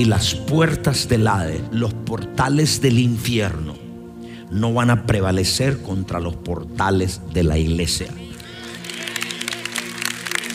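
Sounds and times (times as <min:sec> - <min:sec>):
speech: 0:00.0 - 0:03.8, 0:04.5 - 0:08.3
audience clapping lightly: 0:08.3 - 0:10.5.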